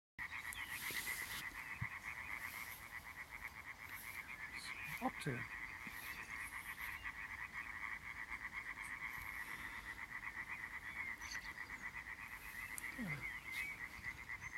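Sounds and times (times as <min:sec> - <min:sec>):
Hyla arborea: 0:00.2 - 0:14.5.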